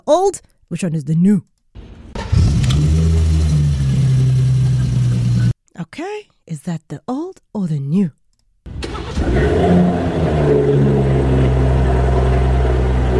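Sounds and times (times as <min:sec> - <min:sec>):
speech: 0:00.1 - 0:01.5, 0:05.8 - 0:08.2
car engine cranking, starting and idling: 0:01.8 - 0:05.5, 0:08.7 - 0:13.1.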